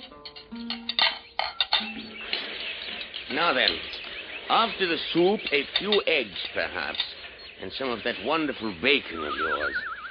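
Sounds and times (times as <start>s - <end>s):
dishes and cutlery clinking in an inn's dining room at breakfast: 0.0s - 4.1s, 5.0s - 7.5s
speech: 3.3s - 3.9s, 4.5s - 9.9s.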